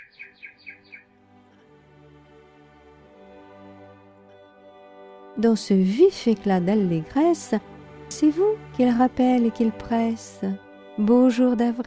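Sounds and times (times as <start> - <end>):
bird singing an accelerating trill: 0.0 - 1.1
speech: 5.4 - 11.8.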